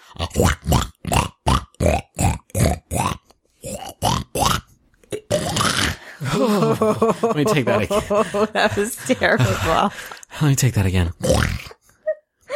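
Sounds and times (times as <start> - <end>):
person imitating pig grunts, oinks and a snort: 0.0 - 6.5, 11.2 - 11.8
speech: 0.1 - 0.9, 6.8 - 11.4
laughter: 6.2 - 10.2.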